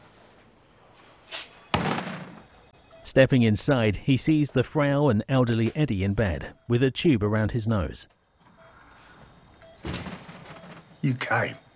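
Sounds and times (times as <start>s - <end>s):
door pushed open with heavy hollow thud: 1.7s - 2.5s, 9.8s - 11.0s
speech: 3.1s - 8.2s, 11.0s - 11.6s
door scraping or creaking: 8.4s - 11.3s.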